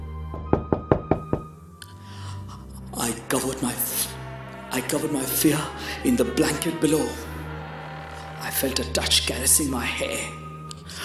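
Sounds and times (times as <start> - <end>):
sharp thud knocking on a door: 0.3 - 1.6
speech: 3.0 - 4.1, 4.7 - 7.3, 8.6 - 11.0.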